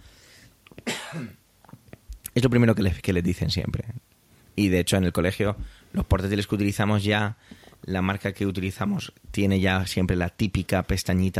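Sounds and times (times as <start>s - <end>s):
person breathing: 0.0s - 0.6s, 5.6s - 6.0s, 7.4s - 7.8s
harsh cough: 0.8s - 1.4s
speech: 1.1s - 1.4s, 2.4s - 3.9s, 4.6s - 11.3s.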